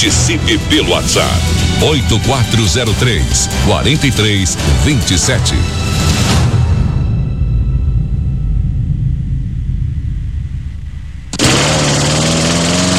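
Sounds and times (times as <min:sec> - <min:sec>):
speech: 0:00.0 - 0:06.4
low rumble: 0:00.0 - 0:11.9
loud burst of noise: 0:06.6 - 0:12.9
brush cutter or chainsaw engine revving: 0:11.3 - 0:12.9.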